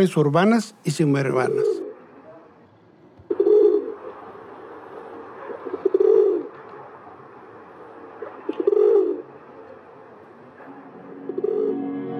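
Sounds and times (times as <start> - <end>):
speech: 0.0 - 1.8
pigeon cooing: 1.3 - 2.0, 3.3 - 4.2, 5.3 - 6.6, 8.5 - 9.4, 11.0 - 11.8.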